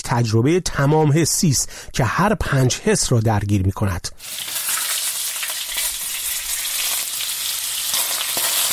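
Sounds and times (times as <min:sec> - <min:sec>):
speech: 0:00.1 - 0:04.5
food frying in a hot pan: 0:04.2 - 0:08.7.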